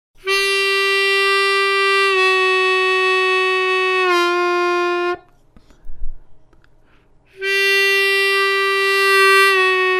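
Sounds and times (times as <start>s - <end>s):
harmonica draw bend on hole 2: 0.2s - 5.5s, 7.3s - 9.9s.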